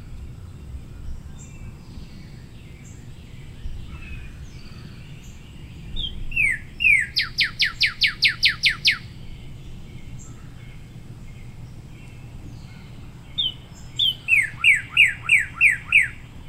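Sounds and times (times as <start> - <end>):
low steady background hum: 0.0 - 16.4
cardinal song of slurred and falling whistled notes: 6.0 - 9.1, 13.4 - 16.2.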